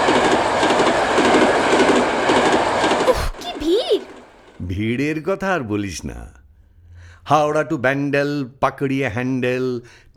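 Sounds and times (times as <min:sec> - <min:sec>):
steady rhythmic train wheel clicks: 0:00.0 - 0:04.8
train passing on rails: 0:00.0 - 0:05.6
speech: 0:04.8 - 0:06.4, 0:07.2 - 0:10.1.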